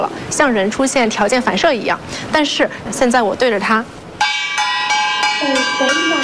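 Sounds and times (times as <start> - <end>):
speech: 0.0 - 4.0, 5.4 - 6.2
gong being struck beside a robot under test: 4.2 - 6.2.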